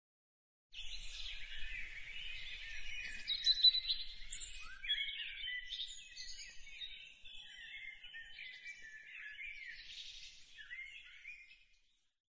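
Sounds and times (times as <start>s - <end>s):
bird singing twitters and warbled phrases: 0.8s - 12.0s.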